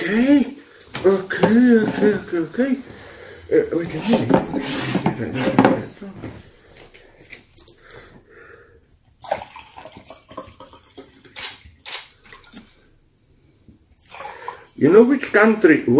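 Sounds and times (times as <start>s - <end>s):
speech: 1.0s - 6.3s, 14.8s - 15.9s
water poured out for drinking, pouring and splashing: 9.2s - 12.9s, 13.9s - 14.8s.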